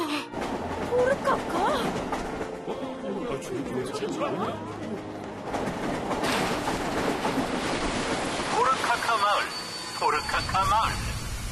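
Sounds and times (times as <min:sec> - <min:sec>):
train arriving at a village station: 0:00.0 - 0:11.5
speech: 0:03.5 - 0:06.1
faint tonal squeals: 0:08.6 - 0:11.5.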